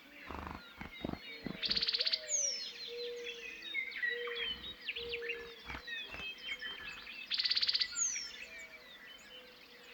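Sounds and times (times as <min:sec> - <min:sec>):
meadowlark singing on prairie in Montana: 0:00.2 - 0:09.4
dove cooing on prairie in Montana: 0:00.3 - 0:03.2, 0:04.2 - 0:07.1.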